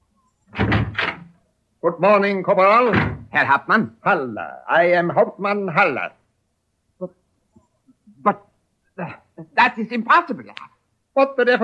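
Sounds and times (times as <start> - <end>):
back door opening and being pushed shut: 0.5 - 1.4, 2.8 - 3.4
solid wooden thumps and rattles of a back door: 0.5 - 1.4, 2.9 - 3.4
speech: 1.8 - 6.2, 7.0 - 7.2, 8.2 - 11.6.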